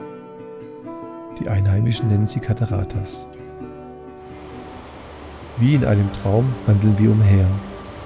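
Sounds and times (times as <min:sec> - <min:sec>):
speech: 0:01.4 - 0:03.4, 0:05.6 - 0:07.7
faint humming tone: 0:04.3 - 0:08.0
steady dense roar of many large waterfalls: 0:04.3 - 0:08.0.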